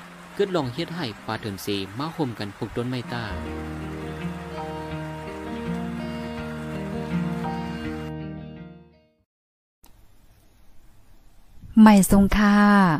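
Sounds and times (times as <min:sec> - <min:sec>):
rain falling: 0:00.0 - 0:08.1
sustained musical tones: 0:00.0 - 0:09.0
speech: 0:00.4 - 0:03.7, 0:11.8 - 0:12.9.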